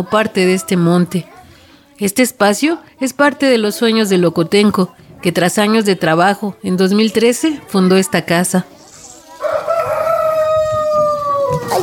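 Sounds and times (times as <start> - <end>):
speech: 0.0 - 1.4, 2.0 - 8.8
rooster crowing: 9.3 - 11.8.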